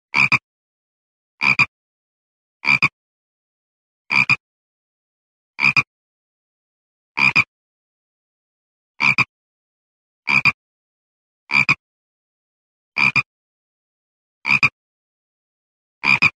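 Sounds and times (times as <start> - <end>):
toad croaking: 2.6 - 3.0, 4.1 - 4.4, 5.6 - 5.9, 7.2 - 7.5, 9.0 - 9.3, 10.3 - 10.6, 11.5 - 11.8, 13.0 - 13.3, 14.4 - 14.8, 16.0 - 16.3.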